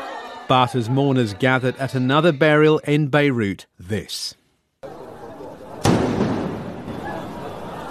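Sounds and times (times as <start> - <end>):
speech: 0.5 - 4.4
walkie-talkie exploding among mourners at a burial: 5.8 - 7.5.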